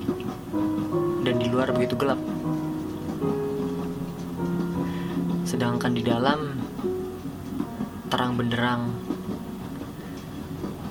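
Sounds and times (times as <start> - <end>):
faint rhythmic clatter underneath the train carriage: 0.0 - 10.8
swaying train carriage rolling along the rails at night: 0.0 - 10.8
speech: 1.5 - 2.4, 5.5 - 6.6, 8.1 - 9.1.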